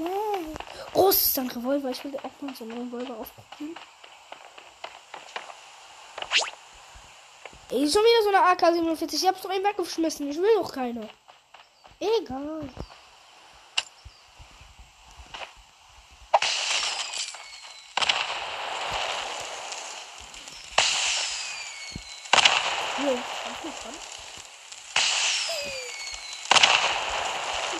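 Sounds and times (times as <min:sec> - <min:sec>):
whistling sizzling firework trails: 0:00.0 - 0:08.0, 0:12.8 - 0:27.7
fireworks exploding: 0:00.0 - 0:27.7
speech: 0:01.0 - 0:04.0, 0:07.7 - 0:11.2, 0:12.0 - 0:12.9.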